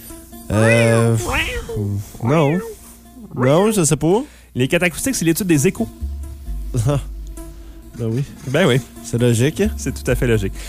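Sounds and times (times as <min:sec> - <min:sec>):
speech: 0:00.5 - 0:02.7, 0:03.4 - 0:06.1, 0:06.7 - 0:07.1, 0:08.0 - 0:10.6
person imitating cat meows: 0:00.5 - 0:02.8.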